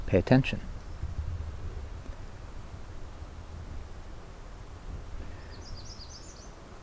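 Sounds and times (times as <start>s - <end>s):
steady broadband hiss: 0.0s - 6.8s
speech: 0.1s - 0.7s
faint high bird chirps: 5.2s - 6.6s.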